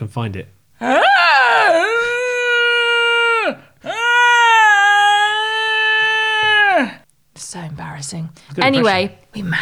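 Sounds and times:
speech: 0:00.0 - 0:01.2, 0:07.4 - 0:09.6
person imitating a neighbour's dog howling: 0:00.8 - 0:07.0.

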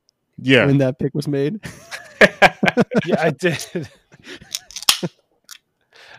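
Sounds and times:
speech: 0:00.4 - 0:05.2
laughter: 0:01.6 - 0:04.6
beer can cracking open: 0:04.6 - 0:05.1.

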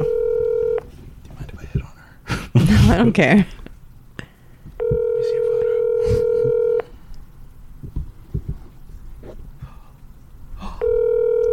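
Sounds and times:
outgoing phone call steady tone: 0:00.0 - 0:00.8, 0:04.8 - 0:06.9, 0:10.8 - 0:11.5
small noises: 0:00.0 - 0:11.5
speech: 0:02.9 - 0:03.6.

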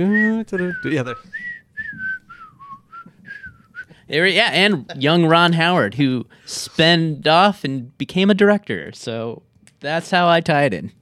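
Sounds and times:
speech: 0:00.0 - 0:02.0, 0:04.1 - 0:10.9
person whistling a bright jaunty TV theme tune: 0:00.0 - 0:04.0.

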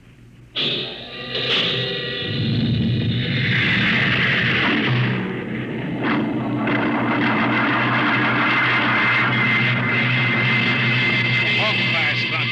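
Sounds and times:
rocket ship jets firing for launch: 0:00.6 - 0:12.5.

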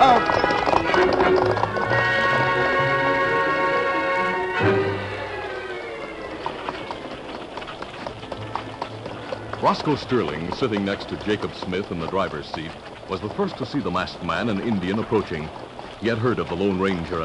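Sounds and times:
galloping hoofbeats of a ridden horse on a muddy trail: 0:00.0 - 0:17.2
sustained orchestral music: 0:00.2 - 0:06.9
speech: 0:09.7 - 0:17.2.

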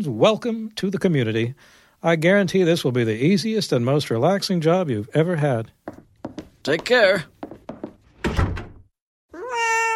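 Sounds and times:
speech: 0:00.0 - 0:06.0, 0:06.6 - 0:07.3
cat meowing: 0:09.3 - 0:09.9.

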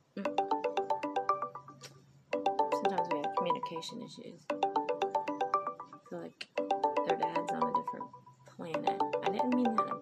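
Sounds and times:
electronic phone ringtone ringing unanswered: 0:00.2 - 0:10.0
speech: 0:03.0 - 0:04.7, 0:06.1 - 0:10.0.

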